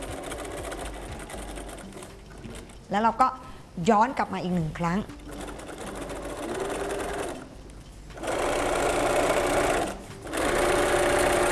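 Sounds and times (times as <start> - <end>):
sewing machine stitching fabric at a corner seam: 0.0 - 2.8, 5.0 - 7.5, 8.2 - 11.5
speech: 2.9 - 5.2.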